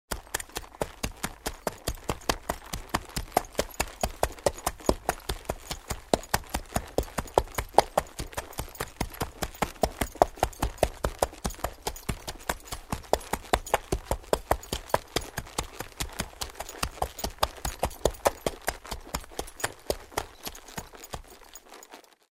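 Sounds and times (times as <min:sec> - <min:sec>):
horse walking on ground: 0:00.1 - 0:22.3.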